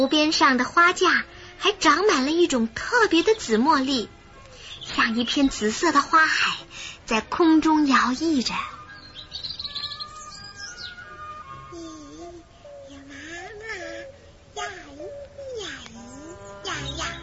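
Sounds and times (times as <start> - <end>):
speech: 0.0 - 4.2, 4.8 - 8.8
small bird chirping in bright rapid bursts: 3.1 - 5.9, 8.0 - 17.2
person making sliding wavering vocal sounds: 11.7 - 17.2.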